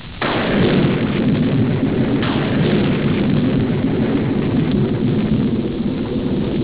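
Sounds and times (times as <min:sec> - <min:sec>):
thunder clap: 0:00.2 - 0:06.6.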